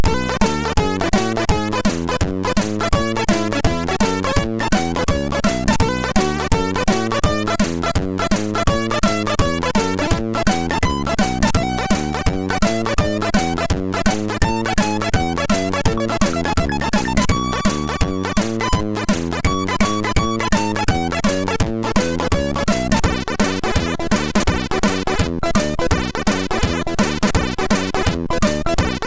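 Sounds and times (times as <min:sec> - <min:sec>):
synthetic jazz on a SID MOS6581R2 sound chip: 0:00.0 - 0:29.0.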